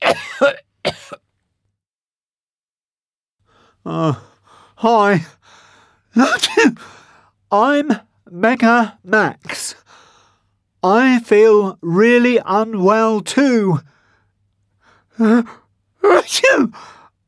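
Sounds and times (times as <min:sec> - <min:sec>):
harsh coughs: 0:00.0 - 0:01.2, 0:06.2 - 0:06.8, 0:16.2 - 0:16.7
speech: 0:03.8 - 0:05.4, 0:06.2 - 0:09.8, 0:10.8 - 0:13.9, 0:15.2 - 0:17.0
theatrical sneeze acted out by a voice: 0:06.2 - 0:06.8, 0:16.1 - 0:16.8.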